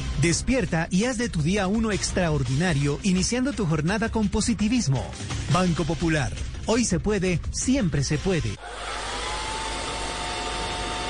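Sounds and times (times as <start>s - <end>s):
speech: 0.2s - 9.0s
hair dryer running with a steady blowing hiss: 8.6s - 11.0s.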